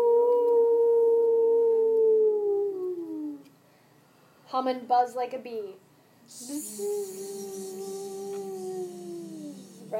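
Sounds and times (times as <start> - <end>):
person imitating a wolf howl: 0.0 - 3.5, 6.3 - 9.9
speech: 4.5 - 7.8.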